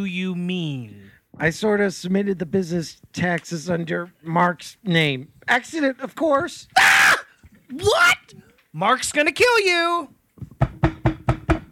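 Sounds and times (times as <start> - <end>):
speech: 0.0 - 6.9, 7.7 - 10.2
knocking on a door: 10.4 - 11.6.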